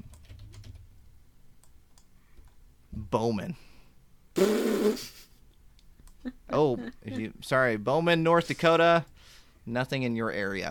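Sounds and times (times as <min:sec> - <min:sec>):
typing on a computer keyboard: 0:00.0 - 0:00.9
speech: 0:03.1 - 0:03.7, 0:04.4 - 0:05.2, 0:06.5 - 0:10.6.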